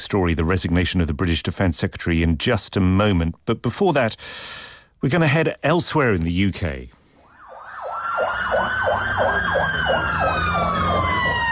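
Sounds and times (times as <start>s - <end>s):
speech: 0.1s - 7.0s
emergency service siren wailing at night in a city: 7.2s - 11.5s.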